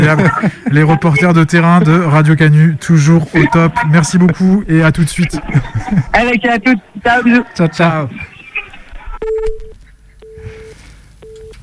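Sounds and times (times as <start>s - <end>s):
speech: 0.0s - 8.3s
laughter: 0.0s - 8.9s
faint noise: 0.0s - 11.6s
telephone beeps as a call ends: 8.4s - 11.6s.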